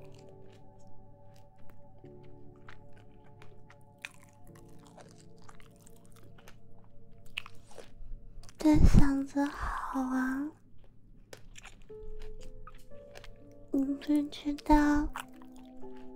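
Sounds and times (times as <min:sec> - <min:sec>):
person chewing an orange: 0:00.0 - 0:08.7, 0:09.4 - 0:16.1
speech: 0:08.7 - 0:10.6, 0:14.0 - 0:15.2.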